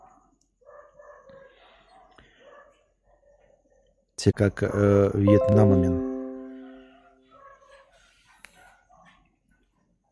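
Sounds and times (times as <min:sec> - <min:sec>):
several dogs barking and yelping: 0:00.0 - 0:04.2, 0:06.5 - 0:10.1
speech: 0:04.2 - 0:06.1.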